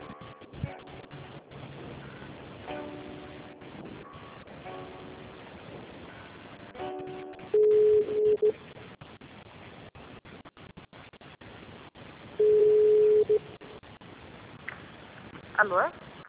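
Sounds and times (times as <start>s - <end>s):
quiet telephone line hiss: 0.0s - 9.0s, 12.2s - 13.8s
telephone busy signal on an office extension line: 7.5s - 8.6s, 12.4s - 13.5s
speech: 15.6s - 16.0s.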